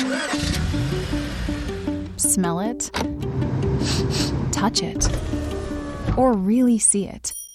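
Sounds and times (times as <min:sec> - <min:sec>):
car engine cranking, catching and idling: 0:00.0 - 0:06.4
speech: 0:02.3 - 0:05.5, 0:06.2 - 0:07.4.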